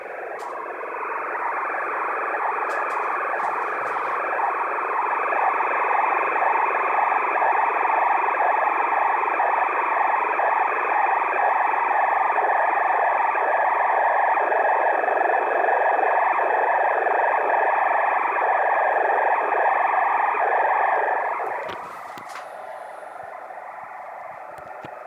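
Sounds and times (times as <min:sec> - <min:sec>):
six meter band radio noise: 0:00.0 - 0:15.6, 0:16.4 - 0:25.0.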